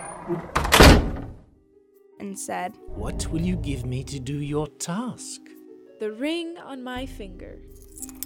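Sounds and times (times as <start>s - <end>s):
speech: 0.3s - 0.6s, 2.3s - 8.2s
door opening with a heavy thunk: 0.3s - 1.4s.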